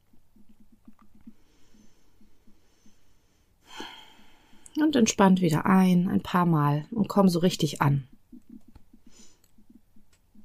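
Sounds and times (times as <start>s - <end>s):
deep exhale during a guided relaxation exercise: 2.8s - 4.7s
speech: 4.8s - 8.1s.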